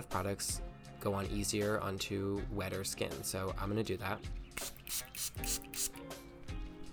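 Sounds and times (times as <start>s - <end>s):
speech: 0.0s - 5.9s
spray bottle spraying toner: 4.6s - 6.0s.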